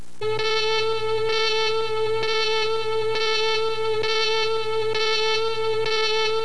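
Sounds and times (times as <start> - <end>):
red alert alarm: 0.2 - 6.4.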